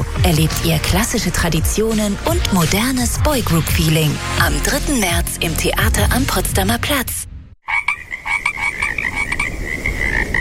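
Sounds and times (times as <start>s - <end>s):
speech: 0.2s - 7.3s
chorus of frogs croaking: 7.6s - 10.4s.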